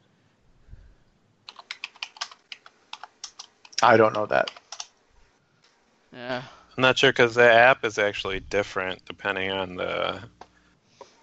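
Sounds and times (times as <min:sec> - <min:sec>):
typing on a computer keyboard into an app's search box: 0:01.5 - 0:03.8, 0:04.4 - 0:04.9
speech: 0:03.8 - 0:04.6, 0:06.3 - 0:10.4.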